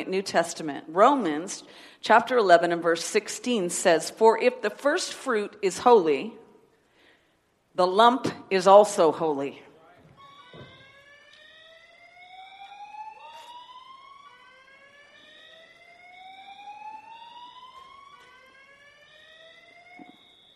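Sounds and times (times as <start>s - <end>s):
speech: 0.0s - 6.4s, 7.8s - 9.6s
fire alarm with rising whoop tones: 10.1s - 20.5s.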